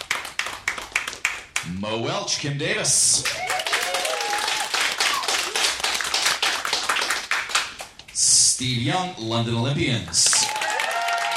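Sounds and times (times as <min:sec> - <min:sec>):
crowd clapping steadily and densely: 0:00.0 - 0:01.7, 0:03.2 - 0:08.0, 0:10.0 - 0:11.3
speech: 0:01.6 - 0:03.6, 0:08.6 - 0:10.4
whistles or cheers from crowd: 0:03.3 - 0:05.4, 0:10.4 - 0:11.3.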